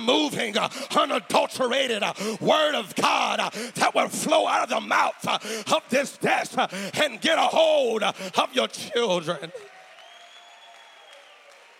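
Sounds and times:
speech: 0.0 - 9.7
congregation clapping hands: 8.6 - 11.7.

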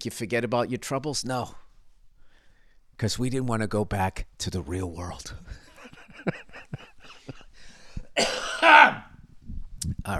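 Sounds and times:
speech: 0.0 - 1.6, 3.0 - 5.6
harsh heavy cough: 8.2 - 9.1
raspy throat clearing: 8.2 - 9.1.

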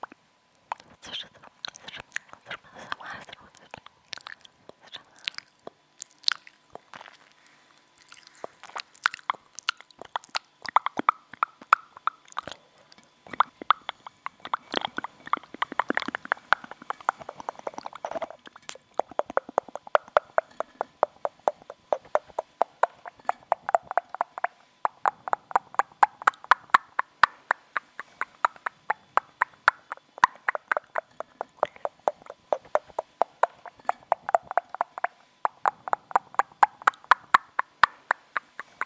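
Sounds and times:
wet mouth sounds from chewing gum: 0.0 - 38.8
soft breathy whispering: 0.7 - 5.6, 12.4 - 20.8, 27.8 - 34.1.

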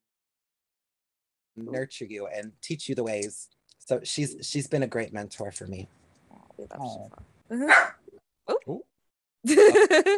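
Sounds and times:
speech: 1.6 - 6.0, 6.6 - 10.1
small dog yapping: 7.6 - 8.0.

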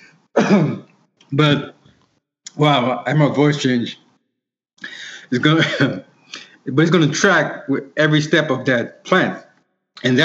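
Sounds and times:
throat clearing: 0.4 - 0.9, 5.6 - 6.5
speech: 0.5 - 1.8, 2.6 - 4.0, 4.8 - 9.4, 10.0 - 10.2.

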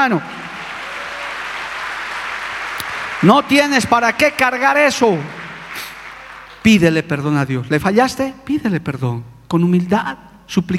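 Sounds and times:
speech: 0.0 - 0.4, 3.2 - 5.4, 6.6 - 10.7
audience applauding: 0.0 - 7.0.

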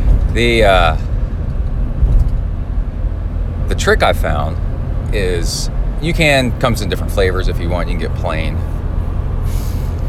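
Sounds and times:
car driving through traffic: 0.0 - 10.0
speech: 0.4 - 1.1, 3.7 - 8.8.

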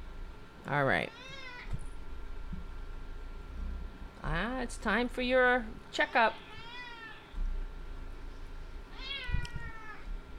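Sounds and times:
speech: 0.7 - 1.4, 4.2 - 6.5
cat meowing: 1.1 - 1.7, 6.4 - 7.4, 8.9 - 10.1.

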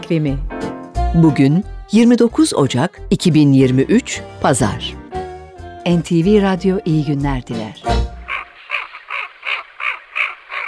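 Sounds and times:
speech: 0.1 - 5.0, 5.8 - 8.0
Eurasian wigeon calling short raspy notes: 8.0 - 10.6.

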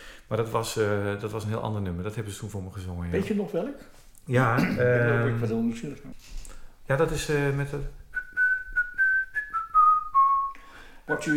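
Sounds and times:
speech: 0.3 - 8.0, 11.1 - 11.3
person whistling a short pop melody: 8.1 - 11.3.

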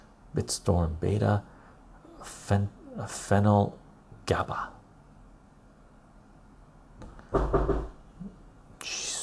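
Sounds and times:
steady hiss of noise: 0.0 - 9.2
speech: 0.4 - 1.5, 2.2 - 4.8, 7.3 - 7.9
dull thumping knocks on a door: 7.3 - 8.0.

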